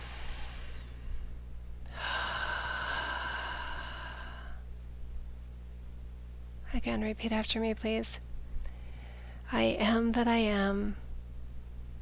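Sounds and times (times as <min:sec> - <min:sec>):
deep breath: 0:00.0 - 0:01.3, 0:01.9 - 0:04.6, 0:08.7 - 0:09.4
low steady hum: 0:00.0 - 0:12.0
speech: 0:06.7 - 0:08.3, 0:09.5 - 0:11.0.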